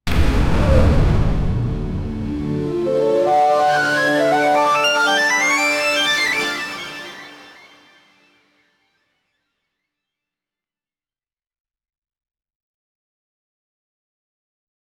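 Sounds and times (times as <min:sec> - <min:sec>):
futuristic winning sound victory fanfare: 0:00.8 - 0:08.4.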